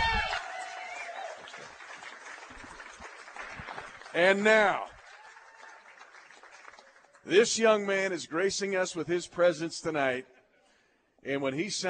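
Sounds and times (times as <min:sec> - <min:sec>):
crowd applauding and cheering for a player's 600th game: 0:00.0 - 0:07.4
speech: 0:04.2 - 0:04.9, 0:07.3 - 0:10.3, 0:11.2 - 0:11.8.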